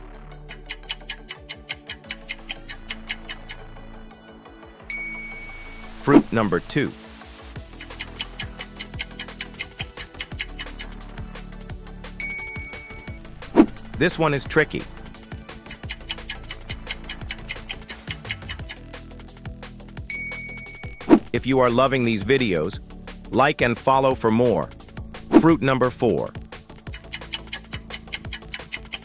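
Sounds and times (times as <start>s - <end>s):
countdown timer ticking for a quiz: 0.5s - 3.7s, 4.9s - 7.0s, 7.6s - 11.3s, 12.2s - 18.9s, 20.0s - 29.0s
bright chime: 4.9s - 6.0s, 12.2s - 13.2s, 20.1s - 21.0s
speech: 6.0s - 7.0s, 14.0s - 15.0s, 21.4s - 24.8s, 25.4s - 26.4s.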